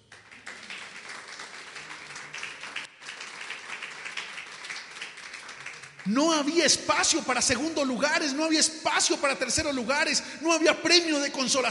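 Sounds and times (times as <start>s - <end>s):
crowd applauding: 0.0s - 7.1s
speech: 6.1s - 11.6s.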